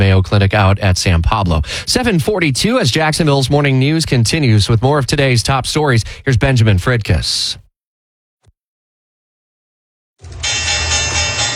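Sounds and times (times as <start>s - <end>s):
speech: 0.1s - 7.6s
stock exchange opening electric bell ringing: 10.2s - 11.5s.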